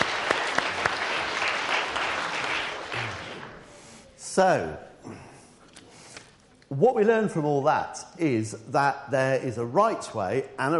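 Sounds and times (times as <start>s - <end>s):
audience applause: 0.0s - 3.7s
speech: 4.4s - 5.2s, 6.7s - 10.7s.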